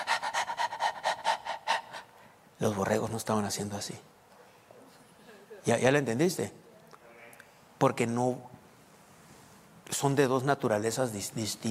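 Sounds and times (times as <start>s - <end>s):
human voice imitating a female dog panting: 0.0s - 2.2s
speech: 2.6s - 4.2s, 5.6s - 6.6s, 7.8s - 8.6s, 10.0s - 11.6s.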